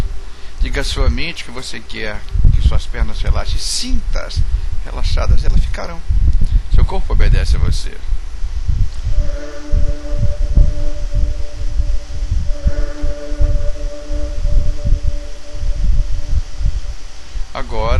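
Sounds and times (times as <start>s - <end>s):
soft sustained humming drone: 0.0s - 3.8s, 8.2s - 17.9s
speech: 0.7s - 9.7s, 17.6s - 17.9s
steady rhythmic heartbeat during a guided relaxation exercise: 8.6s - 17.2s.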